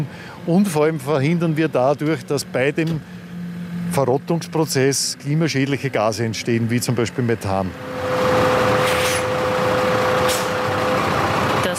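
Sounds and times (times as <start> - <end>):
speech: 0.0 - 3.2, 4.0 - 8.5
garbage truck engine drone with faint whine driving onto a weighbridge: 0.0 - 11.7
garbage truck air brakes hissing: 8.3 - 10.7.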